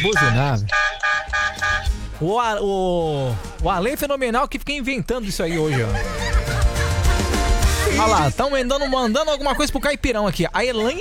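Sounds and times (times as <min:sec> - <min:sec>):
speech: 0:00.0 - 0:00.9, 0:02.2 - 0:06.4, 0:08.0 - 0:10.9
car horns honking at a horn-honking event: 0:00.0 - 0:02.0
laughter: 0:05.4 - 0:10.0.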